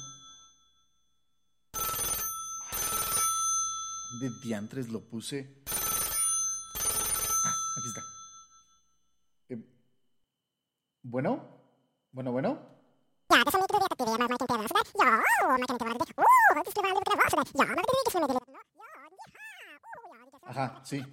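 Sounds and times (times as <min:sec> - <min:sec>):
telephone ringing in long buzzing bursts: 0:01.7 - 0:04.5, 0:05.7 - 0:08.6
speech: 0:04.1 - 0:05.8, 0:09.5 - 0:09.7, 0:11.0 - 0:12.7, 0:13.4 - 0:18.4, 0:20.5 - 0:21.1
man muttering: 0:13.3 - 0:21.1.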